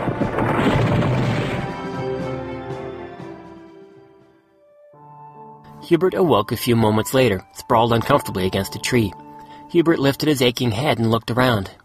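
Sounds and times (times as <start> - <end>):
sharp cracks: 0.0 - 2.3
dragon crashing into forest trees with crunching debris: 0.0 - 2.8
speech: 5.9 - 11.8.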